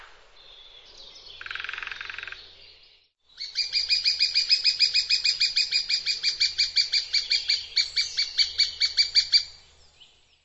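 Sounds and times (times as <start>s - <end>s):
bird sharp high chirps: 0.4s - 10.4s.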